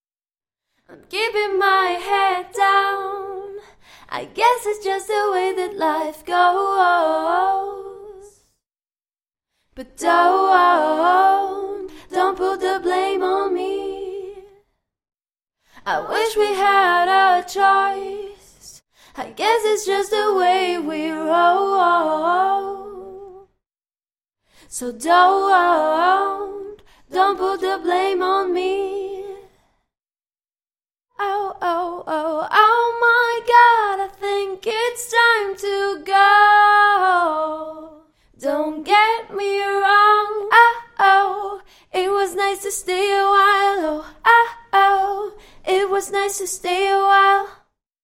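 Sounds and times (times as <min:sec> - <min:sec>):
woman singing pop a cappella in E minor: 0:00.9 - 0:08.6, 0:09.8 - 0:14.6, 0:15.8 - 0:23.5, 0:24.7 - 0:29.6, 0:31.2 - 0:47.8.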